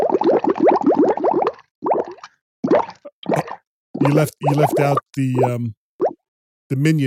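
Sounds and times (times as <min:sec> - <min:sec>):
bubbles popping: 0:00.0 - 0:06.2
speech: 0:04.0 - 0:05.8, 0:06.7 - 0:07.0.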